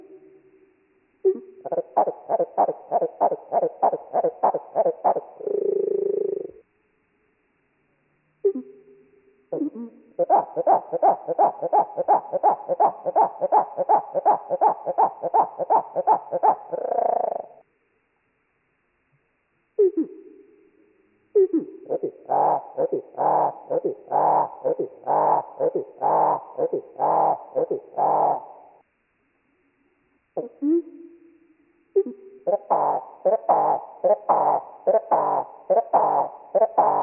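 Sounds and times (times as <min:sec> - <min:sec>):
marsh wren songs slowed 8x: 0:01.3 - 0:06.6, 0:09.5 - 0:17.6, 0:21.5 - 0:28.8, 0:32.0 - 0:37.0.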